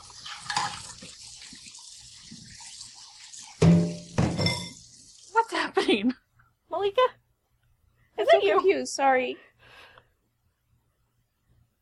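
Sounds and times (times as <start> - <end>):
running tap water while washing dishes: 0.0 - 5.9
crockery clanking during dish washing: 3.6 - 4.8
speech: 5.9 - 6.2, 8.4 - 9.5.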